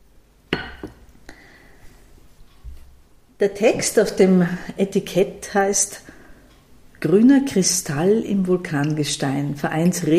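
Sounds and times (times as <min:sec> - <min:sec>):
wine glasses clinking together in a toast: 0:00.5 - 0:01.0
speech: 0:03.4 - 0:06.2, 0:07.0 - 0:10.1.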